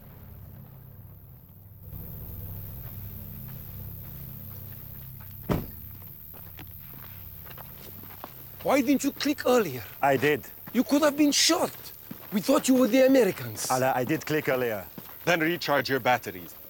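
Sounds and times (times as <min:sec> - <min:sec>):
heavy truck rumbling up a dirt track: 0:00.0 - 0:04.0
tires crunching over loose ground: 0:00.0 - 0:16.6
sharp knock: 0:05.4 - 0:05.8
speech: 0:08.7 - 0:16.6.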